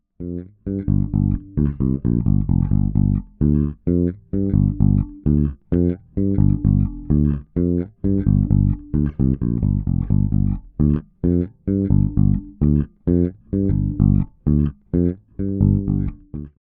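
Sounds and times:
Fodera Emperor Standard 6 bass guitar with both pickups: 0.2 - 16.6.

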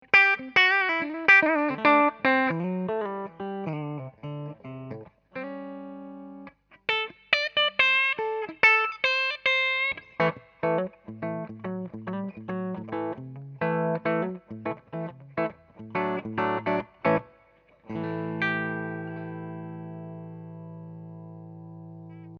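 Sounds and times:
clean electric guitar on bridge pickup: 0.0 - 22.3.

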